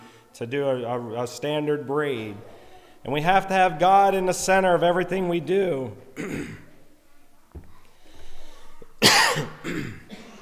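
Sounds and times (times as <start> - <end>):
speech: 0.4 - 6.6
throat-clearing breaths: 2.3 - 10.3
person coughing in a harsh fit: 5.7 - 10.3.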